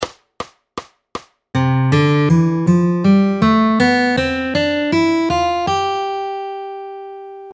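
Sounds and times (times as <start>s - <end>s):
fingerstyle three-chord folk guitar: 1.6s - 7.5s.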